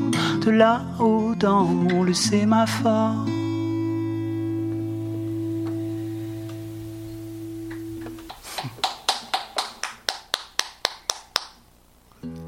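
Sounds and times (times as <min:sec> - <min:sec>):
speech: 0:00.4 - 0:03.4
sustained musical tone: 0:03.2 - 0:08.3
sparse applause from a small audience: 0:04.7 - 0:11.6.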